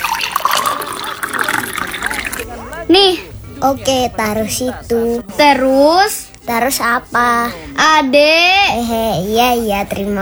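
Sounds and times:
water poured into a drinking glass: 0.0 - 2.8
laughter: 0.0 - 10.2
speech: 3.0 - 10.2.

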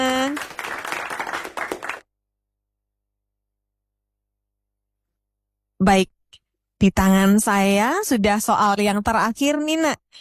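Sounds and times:
group of children clapping hands: 0.0 - 2.1
speech: 5.8 - 10.1.

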